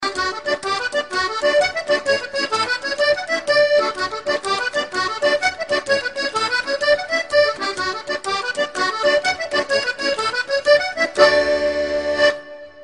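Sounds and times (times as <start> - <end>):
bagpipe: 0.0 - 12.8.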